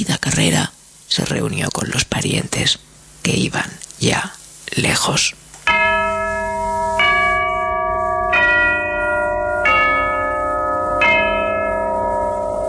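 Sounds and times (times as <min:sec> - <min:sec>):
speech: 0:00.0 - 0:05.4
church bells tolling: 0:05.7 - 0:12.6.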